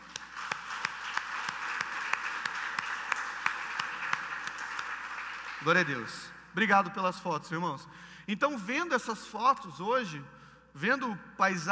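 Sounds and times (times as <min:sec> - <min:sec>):
congregation applauding: 0:00.0 - 0:06.2
speech: 0:05.6 - 0:11.7.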